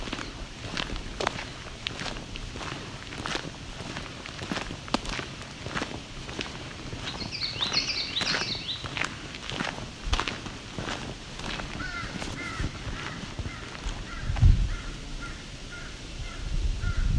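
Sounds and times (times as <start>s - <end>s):
footsteps crunching: 0.0s - 15.4s
crow cawing: 11.8s - 17.0s.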